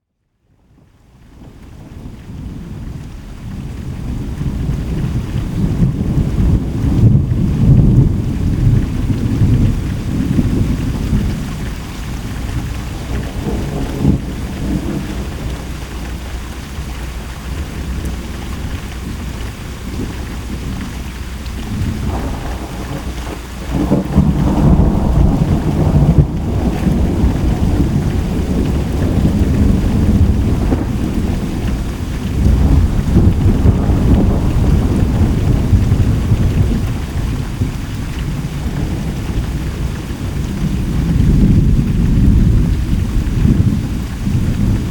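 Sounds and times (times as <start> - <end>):
thunder: 1.4 - 20.9, 21.6 - 44.8.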